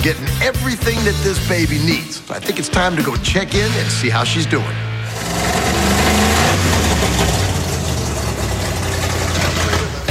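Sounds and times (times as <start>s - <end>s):
speech: 0.0s - 5.6s
loud car engine running with no exhaust fitted: 4.8s - 10.0s.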